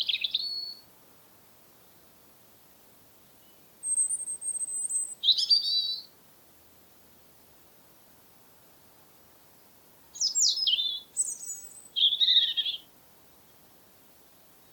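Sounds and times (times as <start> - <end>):
European robin Erithacus rubecula song with warbled and twittering notes: 0.0 - 0.9, 2.7 - 6.2, 8.9 - 14.7.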